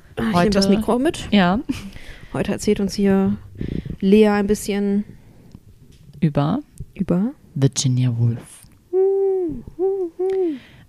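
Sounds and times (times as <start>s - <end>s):
speech: 0.3s - 5.2s, 6.2s - 8.6s
person imitating owl hoots: 8.9s - 10.6s.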